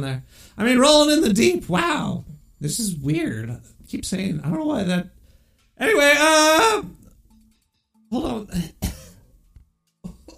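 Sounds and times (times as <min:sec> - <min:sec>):
speech: 0:00.0 - 0:05.2, 0:05.8 - 0:07.0, 0:08.1 - 0:08.8
person coughing: 0:08.6 - 0:09.3, 0:10.0 - 0:10.3.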